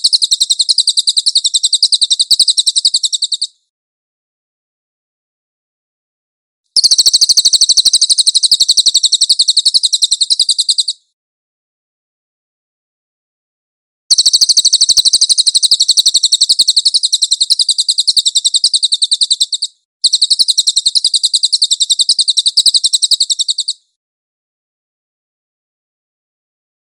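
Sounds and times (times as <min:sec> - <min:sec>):
cililin chattering trills: 0:00.0 - 0:03.5, 0:06.8 - 0:11.0, 0:14.1 - 0:23.8.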